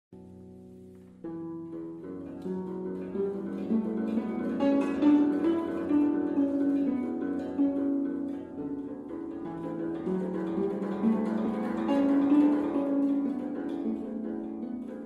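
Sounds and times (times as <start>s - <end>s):
koto playing: 0.2s - 15.0s.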